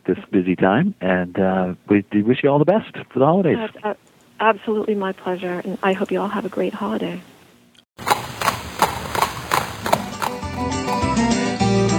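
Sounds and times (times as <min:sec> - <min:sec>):
speech: 0:00.1 - 0:07.3
horse hooves clip-clopping: 0:08.0 - 0:11.3
upbeat music: 0:08.0 - 0:11.8.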